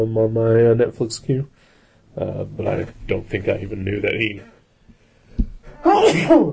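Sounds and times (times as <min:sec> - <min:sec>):
speech: 0:00.0 - 0:01.6, 0:02.2 - 0:04.6, 0:05.8 - 0:06.5
person sneezing: 0:05.7 - 0:06.5.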